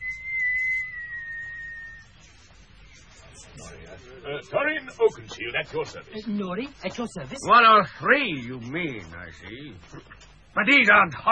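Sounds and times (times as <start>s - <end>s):
person whistling one steady high note: 0.0s - 2.2s
speech: 3.6s - 11.2s.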